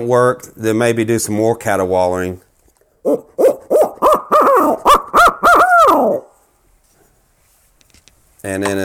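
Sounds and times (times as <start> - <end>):
speech: 0.0 - 3.5, 8.4 - 8.8
owl hooter call imitating owl hoots: 3.0 - 6.4.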